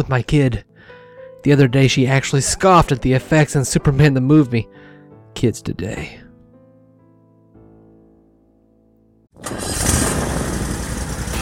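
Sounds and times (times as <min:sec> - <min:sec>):
speech: 0:00.0 - 0:00.7, 0:01.4 - 0:04.8, 0:05.4 - 0:06.2
zero-turn mower engine starting up and running: 0:09.4 - 0:11.4.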